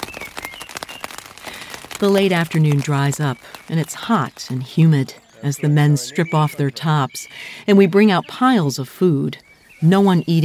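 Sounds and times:
faint bird chirps: 0:00.0 - 0:01.2, 0:02.2 - 0:10.4
rain pattering on a taut tent roof at a grassy spot among hills: 0:00.0 - 0:07.4
speech: 0:02.0 - 0:10.4.

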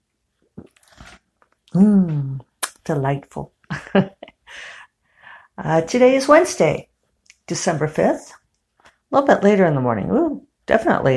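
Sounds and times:
slurping sip of hot coffee from a cup: 0:00.6 - 0:01.6
speech: 0:01.8 - 0:04.2, 0:05.6 - 0:06.9, 0:07.5 - 0:08.4, 0:09.1 - 0:11.1.

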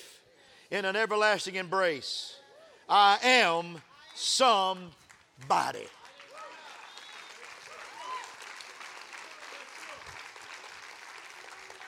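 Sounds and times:
speech: 0:00.7 - 0:06.0
crowd applauding: 0:04.0 - 0:11.8.

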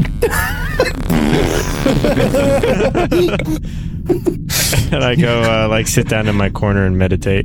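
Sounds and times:
mouth imitation of a fart: 0:00.0 - 0:03.0
laughter: 0:00.2 - 0:06.5
speech: 0:02.0 - 0:07.4.

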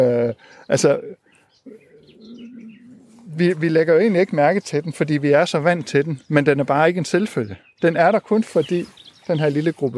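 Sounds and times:
speech: 0:00.0 - 0:01.8, 0:03.4 - 0:09.9
low murmuring voice or hum: 0:00.0 - 0:04.3
blackcap singing bright warbling notes: 0:00.7 - 0:09.9.

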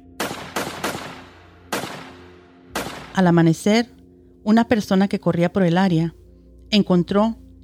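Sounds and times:
gunshots with booming echo: 0:00.0 - 0:03.4
faint steady hum: 0:01.4 - 0:07.6
speech: 0:03.2 - 0:07.4.

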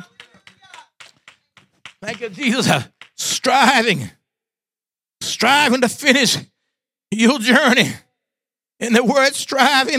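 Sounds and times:
crowd clapping in a steady rhythm: 0:00.0 - 0:04.0
speech: 0:02.0 - 0:04.2, 0:05.4 - 0:06.5, 0:07.1 - 0:08.0, 0:08.8 - 0:09.9.

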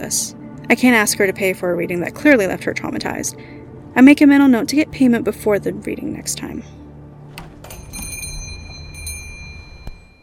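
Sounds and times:
speech: 0:00.0 - 0:06.8
small bells over a shop door jingling: 0:07.4 - 0:10.2.

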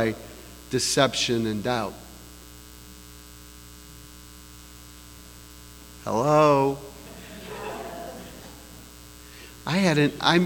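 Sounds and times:
speech: 0:00.0 - 0:02.0, 0:06.0 - 0:06.9, 0:09.7 - 0:10.4
man's voice echoing in an empty room: 0:00.0 - 0:02.2, 0:06.0 - 0:07.9, 0:09.6 - 0:10.4
low electrical hum: 0:00.0 - 0:10.4
laughter: 0:06.9 - 0:08.9, 0:09.8 - 0:10.4.

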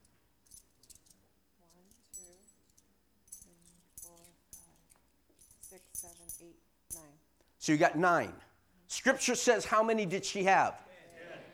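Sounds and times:
coins clinking in a container being opened and handled: 0:00.0 - 0:07.2
speech: 0:05.7 - 0:08.4, 0:09.0 - 0:10.8.

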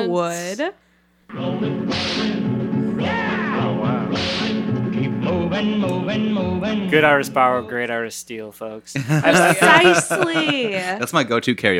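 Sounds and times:
speech: 0:00.0 - 0:02.4, 0:05.5 - 0:11.7
loud continuous song with steady instrumental backing: 0:01.3 - 0:07.7
sharp whip cracks: 0:04.1 - 0:04.7
laughter: 0:09.0 - 0:11.3.

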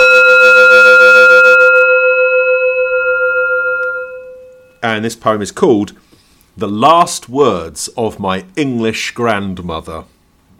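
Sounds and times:
gong being struck and ringing: 0:00.0 - 0:04.8
speech: 0:05.0 - 0:10.1.

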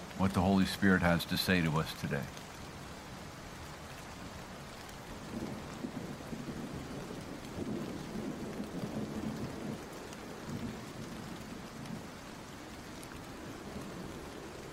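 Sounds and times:
steady rain hissing: 0:00.0 - 0:14.7
speech: 0:00.2 - 0:02.4
low thunder rumbles: 0:05.1 - 0:12.5.

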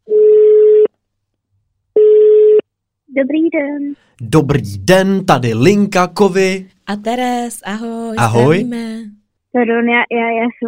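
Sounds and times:
telephone call ringing tone beeps: 0:00.1 - 0:00.9, 0:02.0 - 0:02.6
speech: 0:03.2 - 0:10.6.

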